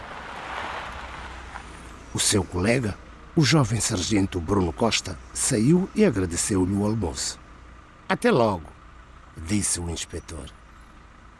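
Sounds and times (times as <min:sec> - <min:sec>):
car engine idling: 0:00.0 - 0:11.3
speech: 0:02.2 - 0:07.4, 0:08.1 - 0:08.8, 0:09.4 - 0:10.6.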